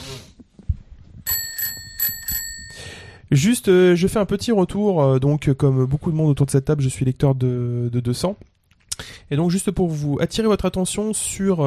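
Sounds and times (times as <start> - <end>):
bicycle bell ringing: 1.3 - 3.0
breaths: 2.6 - 3.3, 8.9 - 9.3
speech: 3.3 - 11.6.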